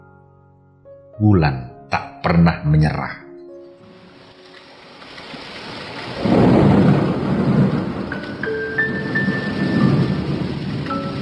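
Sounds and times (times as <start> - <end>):
speech: 1.2 - 3.2
heavy rain: 3.9 - 11.2
deep rolling thunder: 5.4 - 11.2.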